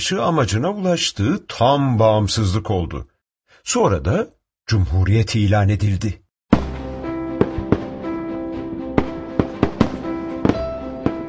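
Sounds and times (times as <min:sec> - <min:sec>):
speech: 0:00.0 - 0:06.2
fireworks bangs at a celebration display: 0:07.4 - 0:08.1, 0:08.9 - 0:11.2.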